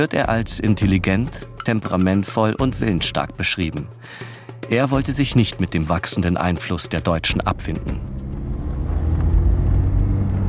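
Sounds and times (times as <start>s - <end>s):
speech: 0.0s - 8.1s
car engine rumbling as it drives off from a farmyard in Old Moshi: 7.3s - 10.4s.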